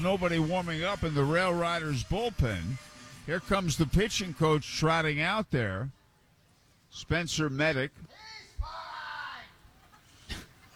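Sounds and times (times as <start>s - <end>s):
speech: 0.0s - 6.0s, 6.9s - 8.3s
baseball fan yelling from the stands: 8.1s - 9.6s.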